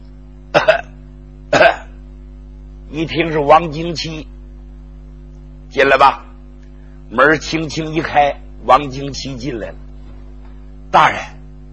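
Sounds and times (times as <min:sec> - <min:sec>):
steady low hum: 0:00.0 - 0:11.7
person imitating someone coughing outside: 0:00.5 - 0:02.0
speech: 0:02.9 - 0:04.4, 0:05.7 - 0:06.2, 0:07.1 - 0:09.8, 0:10.9 - 0:11.4.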